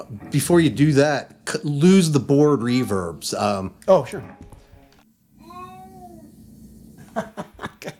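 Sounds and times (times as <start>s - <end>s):
speech: 0.0s - 4.4s, 7.2s - 7.4s
cat meowing: 5.4s - 6.4s
short breathy chuckling bursts: 7.0s - 7.9s.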